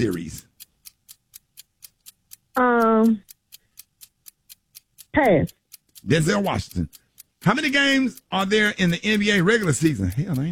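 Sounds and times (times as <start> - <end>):
speech: 0.0 - 0.4, 2.6 - 3.3, 5.2 - 10.5
game clock timer ticking: 0.0 - 10.5.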